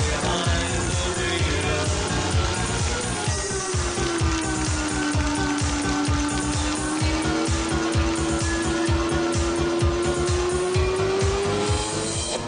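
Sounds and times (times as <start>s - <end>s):
racing car engines roaring and revving: 0.0s - 12.4s.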